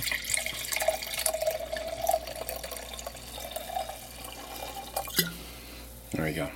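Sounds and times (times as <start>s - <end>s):
Shiraz wine pouring from an opened bottle into a glass: 0.0s - 5.4s
speech: 6.1s - 6.5s.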